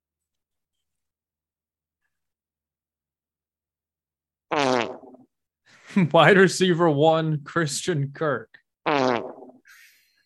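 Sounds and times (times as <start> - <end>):
loud buzzy fart sound effect: 4.5 - 5.3, 8.8 - 9.7
speech: 5.1 - 8.6.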